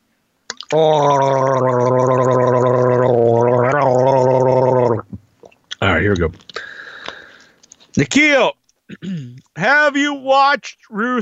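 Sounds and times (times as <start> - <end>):
person gargling seltzer: 0.5 - 6.0
speech: 0.7 - 2.2, 8.0 - 8.5, 9.9 - 11.2.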